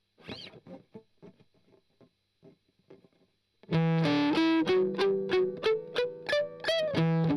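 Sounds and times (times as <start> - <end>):
strummed octave arpeggio: 3.7 - 7.3.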